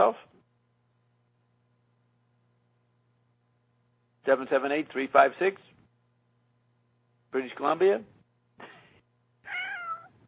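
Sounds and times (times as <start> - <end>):
speech: 0.0 - 0.3, 4.3 - 5.7, 7.3 - 8.7
low steady hum: 0.0 - 10.2
cat meowing: 9.4 - 10.2.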